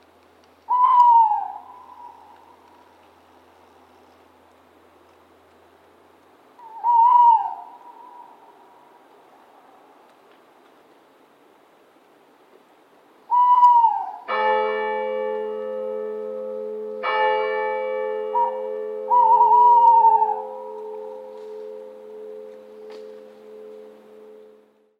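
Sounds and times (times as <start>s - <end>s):
owl call in a ringtone: 0.7s - 3.0s, 6.6s - 8.6s, 13.3s - 14.3s, 18.4s - 21.7s
church bell ringtone: 14.2s - 24.9s.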